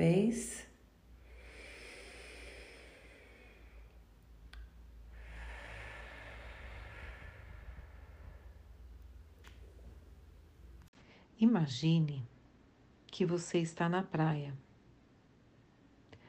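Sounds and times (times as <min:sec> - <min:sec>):
speech: 0:00.0 - 0:00.7, 0:11.4 - 0:12.3, 0:13.2 - 0:14.7
long whooshing exhale through the mouth: 0:01.2 - 0:04.0, 0:05.1 - 0:09.1
airy inhale through the nose: 0:01.2 - 0:04.1, 0:05.0 - 0:09.2.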